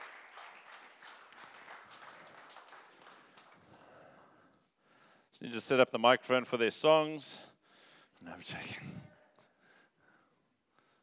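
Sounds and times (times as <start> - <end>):
audience applause: 0.0 - 4.1
speech: 5.4 - 7.5, 8.2 - 9.1.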